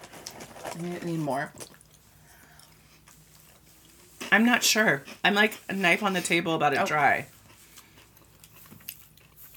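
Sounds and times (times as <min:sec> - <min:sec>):
chewing a crunchy cinnamon snack: 0:00.0 - 0:04.3, 0:07.3 - 0:09.5
speech: 0:00.8 - 0:01.6, 0:04.3 - 0:07.4.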